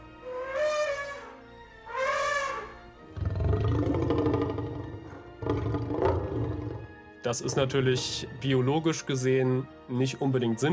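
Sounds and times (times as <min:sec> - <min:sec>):
film dinosaur roar from elephant and lion: 0:02.0 - 0:08.1
speech: 0:07.2 - 0:10.7.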